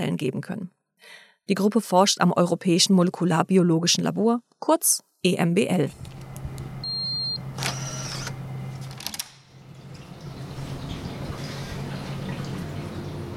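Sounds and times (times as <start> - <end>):
speech: 0.0 - 6.2
steady low mechanical hum: 5.8 - 13.3
water bubbling and trickling in laboratory tanks for growing sponges: 9.6 - 13.3.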